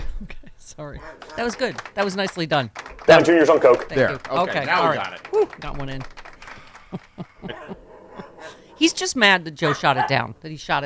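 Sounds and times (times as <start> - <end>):
laughter: 0.0 - 8.7
speech: 0.7 - 6.2, 6.9 - 7.8, 8.8 - 10.8
dog barking: 1.0 - 1.8, 7.4 - 10.3.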